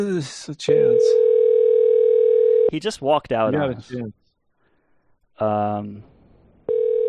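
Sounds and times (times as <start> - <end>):
speech: 0.0 - 1.3, 2.7 - 4.2, 5.4 - 6.1
outgoing phone call electronic ring tone: 0.9 - 2.7, 6.7 - 7.0.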